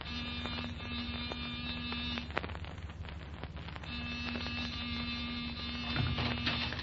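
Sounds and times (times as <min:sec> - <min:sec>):
door buzzer buzzing: 0:00.0 - 0:02.3, 0:03.9 - 0:06.8
faint hiss: 0:00.0 - 0:06.8.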